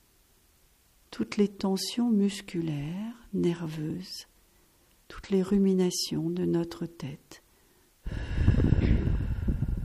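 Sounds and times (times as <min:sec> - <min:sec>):
speech: 0:01.2 - 0:04.3, 0:05.1 - 0:07.4
forceful exhalation during a relaxation breathing exercise: 0:08.0 - 0:09.8.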